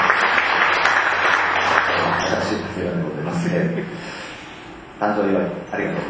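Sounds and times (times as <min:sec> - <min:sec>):
audience applause: 0:00.0 - 0:02.6
people chuckling: 0:02.0 - 0:04.1
speech: 0:05.0 - 0:06.0.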